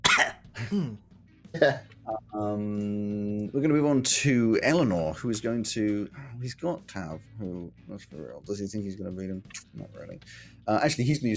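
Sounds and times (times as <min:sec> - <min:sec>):
person coughing: 0:00.0 - 0:01.0
speech: 0:00.6 - 0:11.3.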